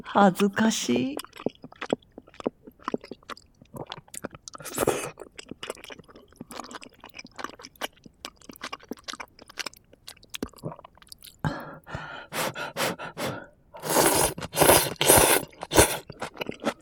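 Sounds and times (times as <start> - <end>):
speech: 0.0 - 1.5
chewing of cabbage eaten with spicy gochujang: 1.2 - 11.4, 13.8 - 16.8.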